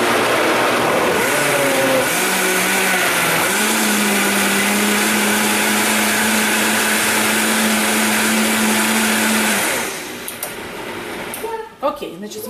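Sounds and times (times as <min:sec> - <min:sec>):
kitchen blender whirring as food in its jug is blended: 0:00.0 - 0:11.5.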